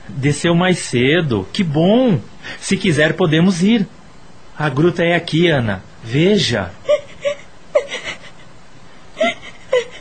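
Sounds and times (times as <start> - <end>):
speech: 0.1 - 4.0, 4.6 - 6.8
woman weeping in short halting whimpers and catching breaths: 6.8 - 9.9.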